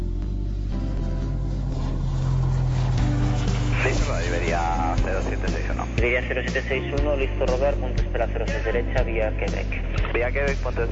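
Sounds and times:
airliner engines starting during pushback: 0.8s - 7.5s
speech: 6.0s - 10.8s.

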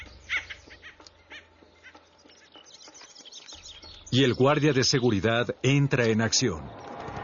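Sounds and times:
woodpecker alarm calls: 0.0s - 5.4s
speech: 4.1s - 6.8s.

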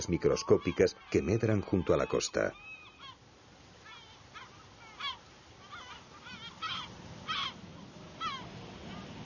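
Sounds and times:
speech: 0.0s - 2.8s
dense coastal colony of seabirds calling with harsh honking cries: 0.0s - 9.2s
steady wash of noise: 0.0s - 9.2s.

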